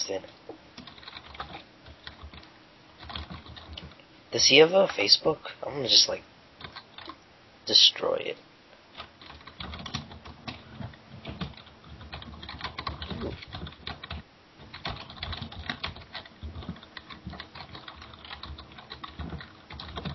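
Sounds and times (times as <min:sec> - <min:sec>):
typing on a computer keyboard: 0:00.8 - 0:04.0, 0:06.6 - 0:07.2, 0:09.0 - 0:20.1
speech: 0:04.3 - 0:06.3, 0:07.7 - 0:08.5.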